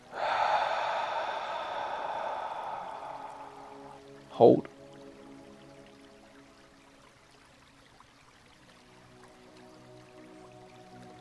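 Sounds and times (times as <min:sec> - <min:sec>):
long airy exhale during a breathwork exercise: 0:00.0 - 0:04.2
speech: 0:04.4 - 0:04.7.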